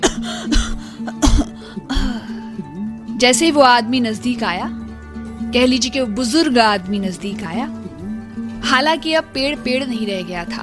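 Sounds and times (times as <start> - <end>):
old man coughing with raspy hoarse bursts: 0.0 - 2.7
speech: 3.2 - 4.8, 5.5 - 7.8, 8.6 - 10.6.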